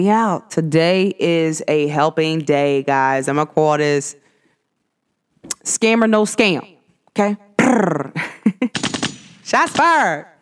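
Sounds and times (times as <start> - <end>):
speech: 0.0 - 4.2, 5.4 - 10.3
rapid machine-gun-like burst of shots: 8.7 - 10.0
gunshot sound effect: 8.7 - 10.1.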